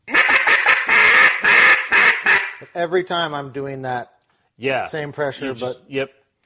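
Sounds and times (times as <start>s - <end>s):
duck call blowing hen quacks: 0.0s - 2.7s
speech: 2.8s - 6.2s.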